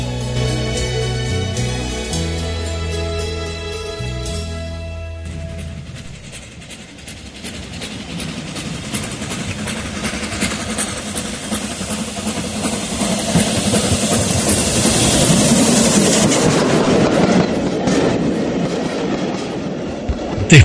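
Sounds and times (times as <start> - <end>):
train rumbling along the tracks: 0.0 - 20.6
train wheels clattering over rail joints: 5.3 - 20.4.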